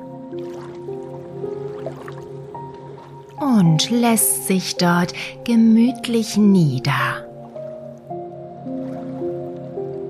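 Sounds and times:
animal wading into shallow water with watery squishes and drips: 0:00.0 - 0:04.3, 0:07.3 - 0:10.0
speech: 0:03.4 - 0:07.2.

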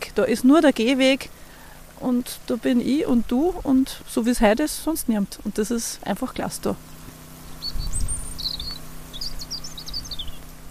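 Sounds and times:
low steady outdoor hum: 0:00.0 - 0:10.6
speech: 0:00.2 - 0:01.4, 0:02.0 - 0:06.9
European robin singing in a tree: 0:05.3 - 0:10.6.

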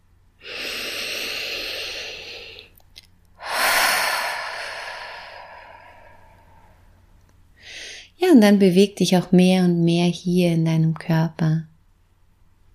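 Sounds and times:
deep human breathing during a guided relaxation: 0:00.4 - 0:02.8, 0:03.4 - 0:07.0
speech: 0:08.4 - 0:11.7.

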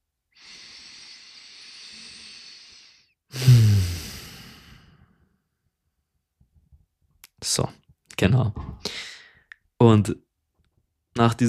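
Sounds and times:
person breathing in and out: 0:00.3 - 0:05.4, 0:08.8 - 0:09.5
speech: 0:07.4 - 0:09.0, 0:09.8 - 0:10.2, 0:11.2 - 0:11.4.

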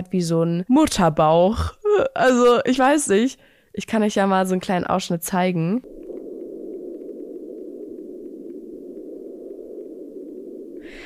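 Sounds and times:
speech: 0:00.0 - 0:05.9
steady pink noise hiss: 0:05.8 - 0:11.0.

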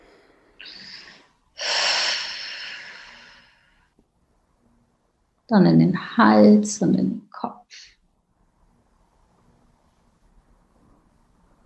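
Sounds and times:
deep breathing during a guided relaxation: 0:00.0 - 0:04.0
speech: 0:05.5 - 0:07.5.

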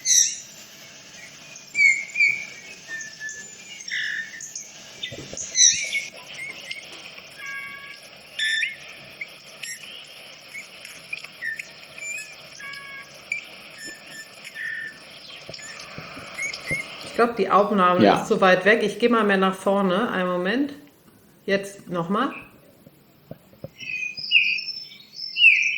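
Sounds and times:
finch singing a fluting whistled song outdoors: 0:00.0 - 0:18.3, 0:23.7 - 0:25.7
chorus of other birds chirping outdoors: 0:00.0 - 0:25.7
speech: 0:17.2 - 0:20.8, 0:21.5 - 0:22.4.

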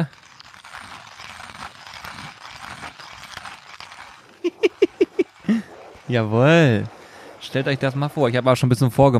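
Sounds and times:
speech: 0:00.0 - 0:00.2, 0:06.1 - 0:09.1
hand coffee grinder grinding coffee beans: 0:00.0 - 0:09.1
laughter: 0:04.4 - 0:05.7.

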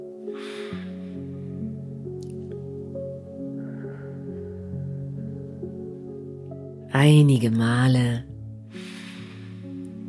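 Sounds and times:
breath drawn in through the nose and blown out through the mouth: 0:00.3 - 0:01.4, 0:08.7 - 0:09.9
speech: 0:07.0 - 0:08.3.

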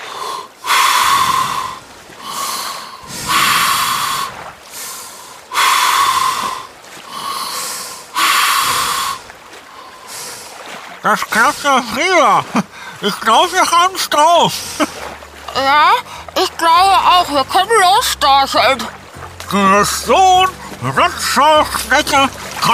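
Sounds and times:
deep slow breaths in and out through the mouth via a snorkel: 0:00.0 - 0:10.8
speech: 0:11.0 - 0:14.9, 0:15.6 - 0:22.7.

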